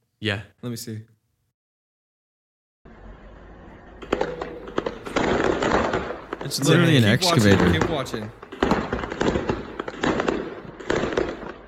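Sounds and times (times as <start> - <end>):
speech: 0.2 - 1.2, 6.5 - 8.4
fireworks crackling and popping in a played video: 3.9 - 11.6.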